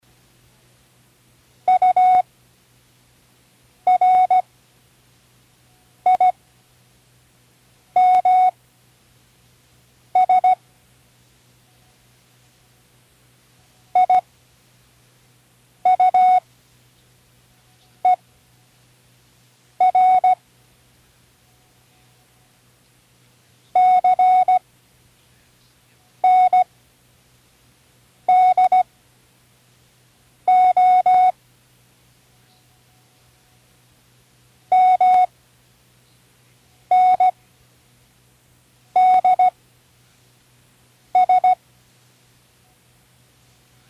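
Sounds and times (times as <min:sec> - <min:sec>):
morse code beeps: 0:01.7 - 0:02.2, 0:03.9 - 0:04.4, 0:06.1 - 0:06.4, 0:08.0 - 0:08.5, 0:10.2 - 0:10.6, 0:14.0 - 0:14.2, 0:15.8 - 0:16.4, 0:19.8 - 0:20.4, 0:23.8 - 0:24.6, 0:26.2 - 0:26.7, 0:28.3 - 0:28.8, 0:30.5 - 0:31.4, 0:34.7 - 0:35.3, 0:36.9 - 0:37.4, 0:39.0 - 0:39.5, 0:41.2 - 0:41.6.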